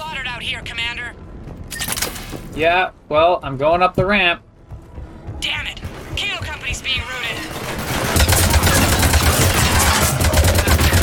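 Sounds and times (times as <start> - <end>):
speech: 0.4 - 1.2, 2.6 - 4.5
video game automatic gunfire: 5.9 - 11.0.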